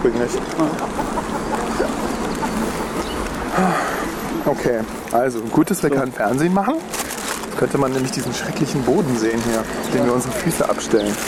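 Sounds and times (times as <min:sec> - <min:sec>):
speech: 0:00.0 - 0:01.1, 0:03.6 - 0:03.8, 0:04.5 - 0:11.2
faint bird chirps: 0:00.8 - 0:04.5.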